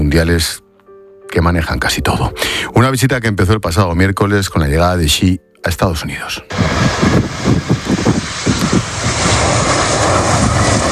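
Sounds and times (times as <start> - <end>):
speech: 0.1 - 0.6, 1.3 - 7.6
airliner arriving at an air base: 6.5 - 10.9.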